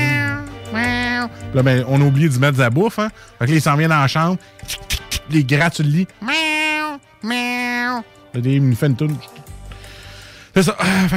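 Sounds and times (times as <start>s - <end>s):
cat meowing: 0.0s - 1.4s, 6.2s - 8.1s
speech: 1.5s - 6.5s, 7.2s - 9.4s, 10.6s - 11.1s.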